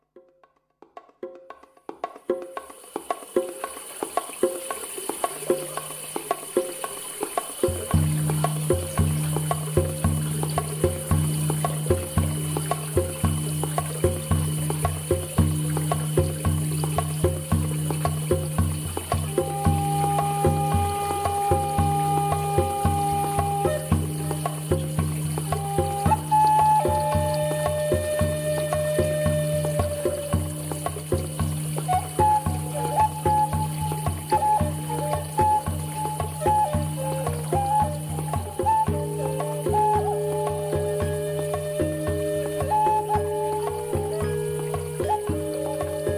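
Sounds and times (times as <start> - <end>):
shamanic drum music: 0.0 - 46.1.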